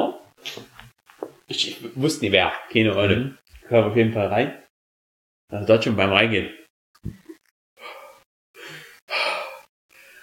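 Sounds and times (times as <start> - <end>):
speech: 1.5 - 4.6, 5.5 - 7.2
person imitating a man breathing heavily in a public toilet: 7.8 - 10.2.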